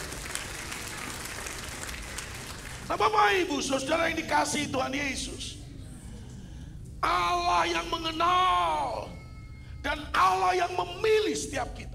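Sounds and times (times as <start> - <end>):
audience applause during a sermon: 0.0 - 3.0
speech: 2.9 - 5.6, 7.0 - 9.2, 9.8 - 11.9.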